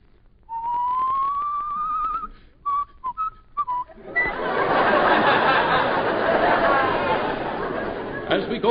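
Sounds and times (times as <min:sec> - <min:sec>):
long rising whistled tone with short whistle blips: 0:00.5 - 0:04.6
laughter: 0:03.9 - 0:08.6.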